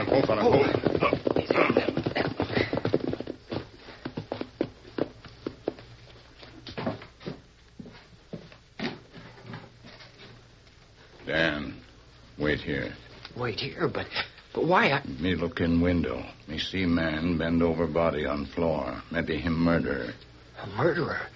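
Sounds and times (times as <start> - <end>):
horse hooves clip-clopping as riders ride to the back of a house: 0.0 - 10.8
speech: 0.2 - 1.9, 13.4 - 21.3.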